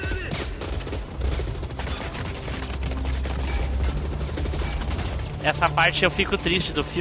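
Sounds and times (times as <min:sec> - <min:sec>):
rapid gunfire with machine-gun bursts in an action film shootout: 0:00.2 - 0:05.8
speech: 0:05.4 - 0:06.9.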